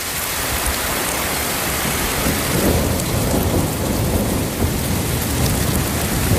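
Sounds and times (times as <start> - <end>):
heavy rain pouring down: 0.0 - 6.3
deep thunder rolling and rumbling: 1.4 - 6.3.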